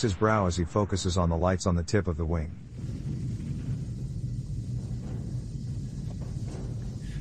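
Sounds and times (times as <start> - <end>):
speech: 0.0 - 3.0
deep thunder rumbling during a torrential rainstorm: 0.0 - 7.2
faint hiss of torrential rain: 2.3 - 7.2.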